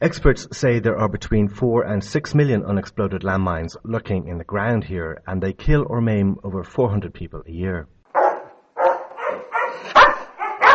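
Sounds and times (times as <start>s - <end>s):
speech: 0.0s - 8.0s
Belgian shepherd puppies barking and yipping: 8.1s - 10.7s.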